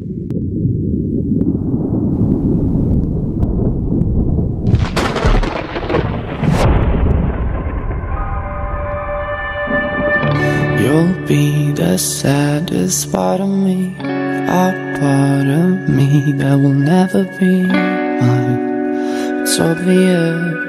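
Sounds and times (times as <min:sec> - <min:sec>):
loud deep rumbling thunder: 0:00.0 - 0:11.0
rain: 0:01.4 - 0:09.0
music: 0:07.9 - 0:20.6
speech: 0:12.0 - 0:18.5, 0:19.6 - 0:20.6.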